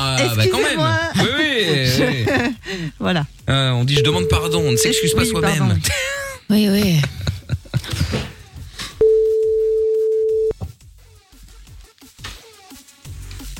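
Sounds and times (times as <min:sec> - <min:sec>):
people laughing: 0:00.2 - 0:02.7, 0:05.8 - 0:08.3
speech: 0:00.2 - 0:08.3
telephone ringing tone of a call being dialled: 0:04.0 - 0:05.7, 0:09.0 - 0:10.5.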